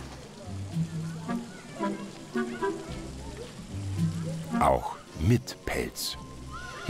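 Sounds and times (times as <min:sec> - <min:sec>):
rain falling outdoors: 0:00.0 - 0:06.8
speech: 0:04.6 - 0:06.2.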